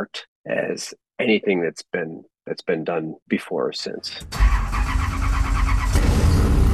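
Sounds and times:
speech: 0.0s - 4.8s
heavily modified 1965 Ford Mustang engine of over 800 horsepower revving: 4.3s - 6.7s.

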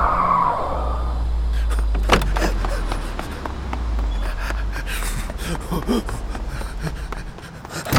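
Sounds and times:
small car tires squealing: 0.0s - 7.1s
small car engine rumble: 0.1s - 7.9s
clunks and rattles: 1.6s - 4.0s, 7.6s - 7.9s.

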